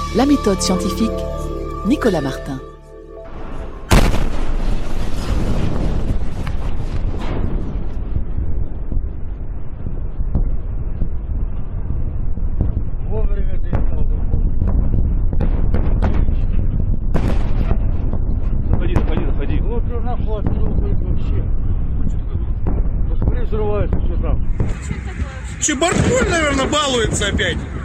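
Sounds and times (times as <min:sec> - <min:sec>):
people's voices: 0:00.1 - 0:02.7, 0:24.7 - 0:27.8
speech: 0:00.1 - 0:02.7, 0:27.2 - 0:27.7
meteor exploding in the sky: 0:03.3 - 0:27.8.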